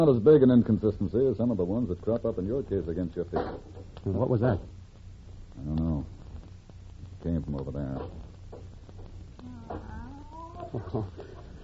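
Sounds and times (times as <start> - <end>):
speech: 0.0 - 4.8, 5.6 - 6.2, 7.2 - 8.2, 10.7 - 11.4
low hum: 0.0 - 11.6
cat meowing: 9.4 - 10.8.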